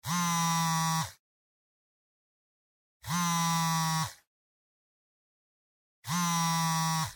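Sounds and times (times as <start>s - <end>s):
cell phone vibrating in a hand: 0.0s - 1.2s, 3.0s - 4.3s, 6.0s - 7.1s.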